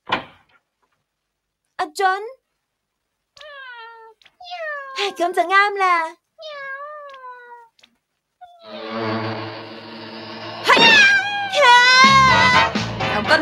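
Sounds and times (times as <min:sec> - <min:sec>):
speech: 0:01.9 - 0:02.4, 0:04.5 - 0:06.2
stray cat in an animated cartoon meowing: 0:03.4 - 0:05.4, 0:06.4 - 0:07.8, 0:08.4 - 0:08.8, 0:10.7 - 0:12.7.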